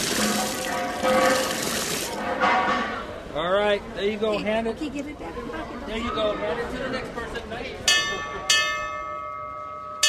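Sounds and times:
old fire engine bell clanging: 0:00.2 - 0:03.1, 0:07.9 - 0:10.0
speech: 0:03.7 - 0:08.5.

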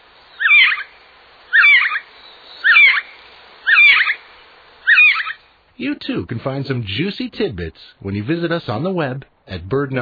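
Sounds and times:
gray jay whiskey jack calls: 0:00.4 - 0:05.5
speech: 0:05.8 - 0:09.9.

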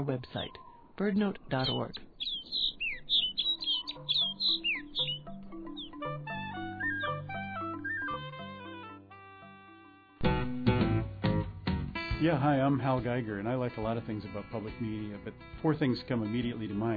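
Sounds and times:
speech: 0:00.0 - 0:02.1, 0:12.2 - 0:16.9
snow bunting twittering calls: 0:00.0 - 0:09.0
gentle melodic tune: 0:02.6 - 0:16.9.

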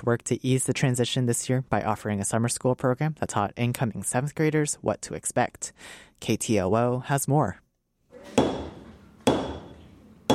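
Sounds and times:
speech: 0:00.0 - 0:07.6
hammers stamping shapes into leather in a middle school makerspace class: 0:08.3 - 0:10.3.

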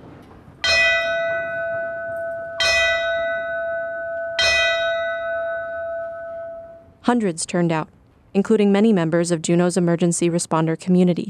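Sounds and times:
ceremonial bell tolling: 0:00.0 - 0:07.3
speech: 0:07.1 - 0:11.2.

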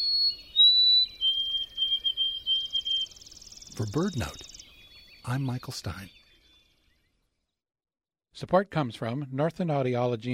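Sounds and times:
White-throated Sparrow song: 0:00.0 - 0:07.5
speech: 0:03.8 - 0:04.5, 0:05.2 - 0:06.2, 0:08.4 - 0:10.3.

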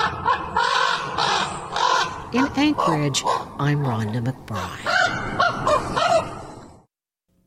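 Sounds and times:
raven cawing harshly: 0:00.0 - 0:03.6, 0:04.6 - 0:06.8
speech: 0:02.3 - 0:06.3.

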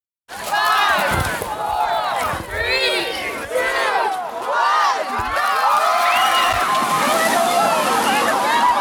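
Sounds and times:
crowd shrieking and yelling: 0:00.3 - 0:08.7
icy cold ocean water splashing as people rush in: 0:05.3 - 0:08.7.

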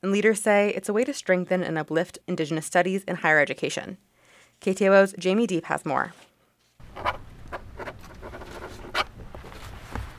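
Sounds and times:
speech: 0:00.0 - 0:06.3
low hum: 0:06.8 - 0:10.1
two pens scratching across paper while signing a document: 0:06.8 - 0:10.1.

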